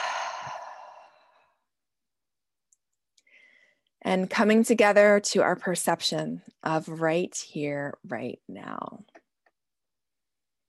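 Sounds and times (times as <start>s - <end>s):
long loud airy deep exhale: 0.0s - 1.6s
speech: 4.1s - 9.1s.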